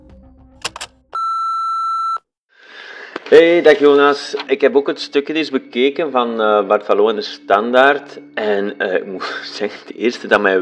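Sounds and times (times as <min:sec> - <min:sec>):
quick clicks: 0:00.6 - 0:00.9
voicemail beep: 0:01.2 - 0:02.2
speech: 0:03.3 - 0:10.5.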